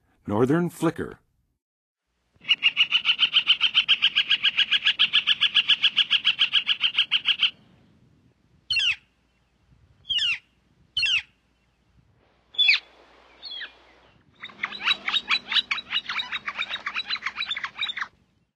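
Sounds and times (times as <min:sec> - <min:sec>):
Northern Flicker singing in the Western USA: 0:02.4 - 0:07.6, 0:08.7 - 0:11.8, 0:12.6 - 0:18.5.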